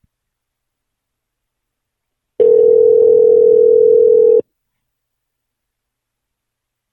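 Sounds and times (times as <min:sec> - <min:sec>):
telephone call ringing tone: 0:02.4 - 0:04.4.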